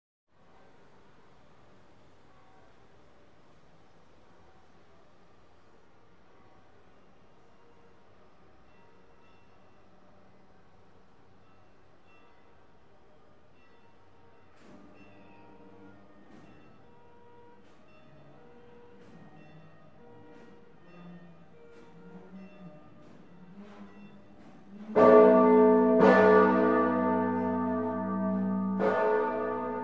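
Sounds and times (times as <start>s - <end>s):
Duomo Cathedral bell towers ringing in Florence: 24.8s - 29.8s.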